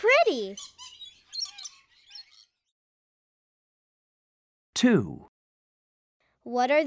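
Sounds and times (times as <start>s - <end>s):
pet birds squawking and chirping: 0.0s - 2.8s
speech: 0.3s - 0.8s, 4.8s - 5.3s, 6.4s - 6.8s.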